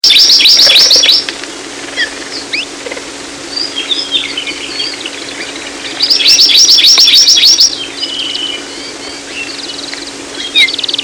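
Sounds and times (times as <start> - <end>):
Amakihi giving a fast high trill: 0.0 - 1.3, 3.5 - 11.0
low hum: 0.0 - 11.0.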